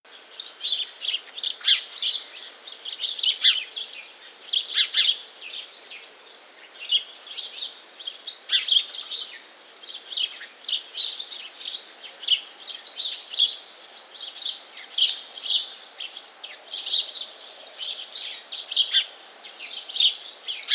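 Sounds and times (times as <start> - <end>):
house sparrow Passer domesticus chirping: 0.4 - 6.2, 6.8 - 20.7.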